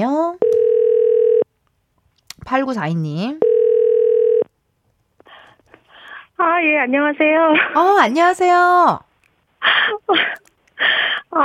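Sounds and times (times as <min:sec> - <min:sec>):
electronic telephone ringback tone of an outgoing call: 0:00.4 - 0:01.4, 0:03.4 - 0:04.4
speech: 0:02.5 - 0:03.4, 0:06.4 - 0:10.4.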